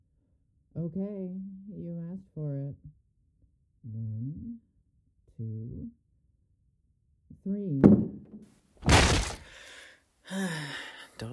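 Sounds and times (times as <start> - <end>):
speech: 0.8 - 3.0, 3.8 - 4.7, 5.4 - 6.0, 7.4 - 8.2, 10.3 - 11.3
door kicked open with a loud crash: 7.8 - 9.6.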